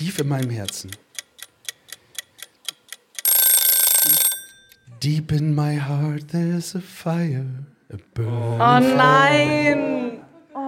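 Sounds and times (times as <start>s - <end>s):
speech: 0.0s - 1.1s, 5.0s - 10.0s
mechanical timer ticking: 0.0s - 4.8s
mechanical timer bell ringing: 3.2s - 4.8s.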